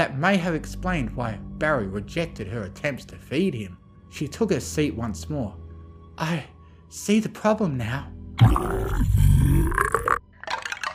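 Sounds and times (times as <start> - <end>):
speech: 0.0 - 5.6, 6.2 - 10.1
long loud deep rumbling burp: 8.4 - 10.2.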